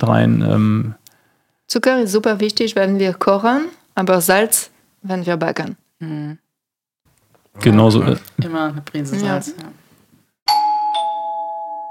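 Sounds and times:
speech: 0.0 - 1.0, 1.7 - 6.4, 7.6 - 9.8
two-note ding-dong doorbell chime: 10.5 - 11.8.

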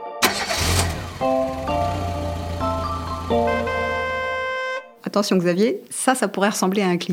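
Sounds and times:
car engine starting and running: 0.2 - 4.5
bright electronic musical tones: 1.5 - 4.9
speech: 5.1 - 7.1.

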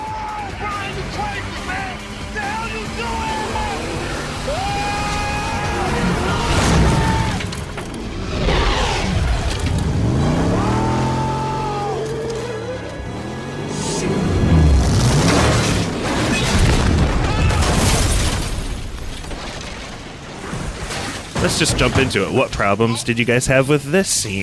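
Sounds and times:
car engine revving: 0.4 - 16.9
car crashing onto boat: 5.9 - 8.3, 15.2 - 22.4
speech: 21.6 - 24.4.

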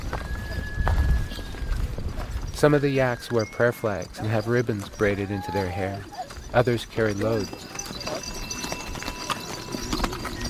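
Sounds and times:
steady thin whistling tone: 0.0 - 4.2
horse hooves clopping on a mountain pilgrim trail: 0.0 - 10.4
speech: 2.6 - 7.7.

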